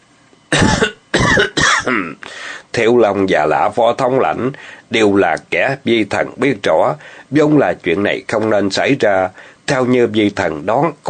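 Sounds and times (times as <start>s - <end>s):
dry coughs: 0.5s - 2.2s
speech: 2.0s - 11.0s.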